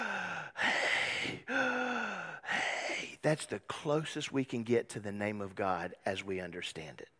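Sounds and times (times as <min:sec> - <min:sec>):
heavy breathing: 0:00.0 - 0:03.2
speech: 0:03.2 - 0:07.1.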